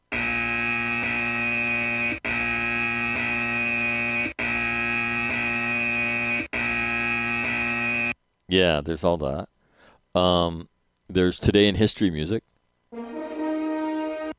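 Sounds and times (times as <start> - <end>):
loud harsh electronic buzzer: 0.1 - 8.2
speech: 8.5 - 9.5, 10.1 - 13.1.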